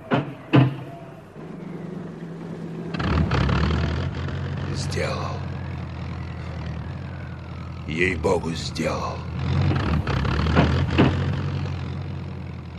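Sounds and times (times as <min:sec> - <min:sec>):
airplane engine starting and idling: 0:00.0 - 0:12.7
speech: 0:04.8 - 0:05.4, 0:07.9 - 0:09.7
sharp knocks: 0:09.7 - 0:11.4.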